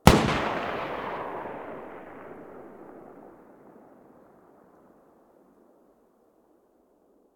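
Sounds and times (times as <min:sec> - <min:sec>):
distant Galil rifle muzzle blast: 0:00.0 - 0:04.4.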